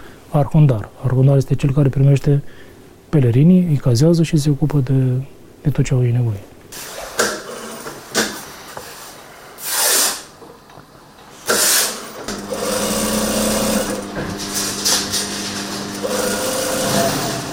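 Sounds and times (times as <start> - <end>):
speech: 0.3 - 6.9
sewing machine running in a tailoring workshop on Mount Athos: 11.5 - 17.5.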